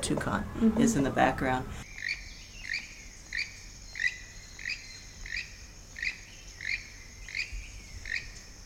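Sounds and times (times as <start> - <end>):
speech: 0.1 - 1.9
tropical forest insect chorus: 1.8 - 8.6.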